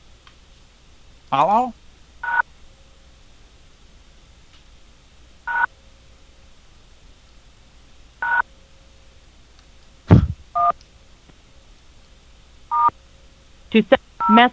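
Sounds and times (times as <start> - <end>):
faint hiss: 0.0 - 14.5
speech: 1.3 - 1.8, 13.7 - 14.5
telephone keypad tones as a number is dialed: 8.2 - 8.4, 12.7 - 12.9.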